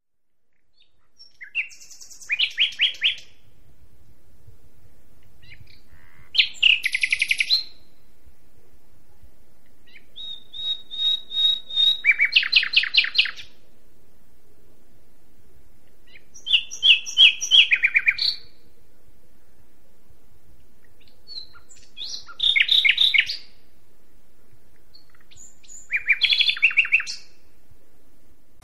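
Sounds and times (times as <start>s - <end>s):
common nightingale Luscinia megarhynchos singing: 0.4s - 13.8s, 15.8s - 18.8s, 20.6s - 23.8s, 24.4s - 27.5s.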